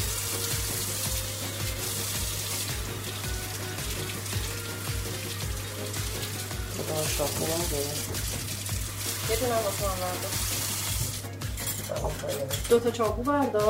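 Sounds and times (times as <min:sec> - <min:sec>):
water splashing in a large tray as pomegranates are washed by hand: 0:00.0 - 0:11.2
speech: 0:07.1 - 0:08.2, 0:09.3 - 0:10.5, 0:11.9 - 0:13.6.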